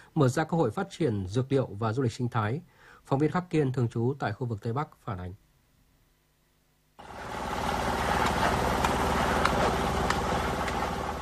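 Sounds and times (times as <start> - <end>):
speech: 0.2 - 5.4
heavy machinery engine drone at a road construction site in Lai Châu province: 7.0 - 11.1.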